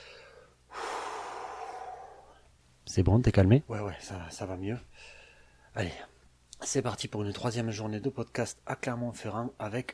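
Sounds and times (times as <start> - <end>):
deep breath: 0.0 - 2.5, 4.9 - 5.7
speech: 2.9 - 5.2, 5.8 - 9.9.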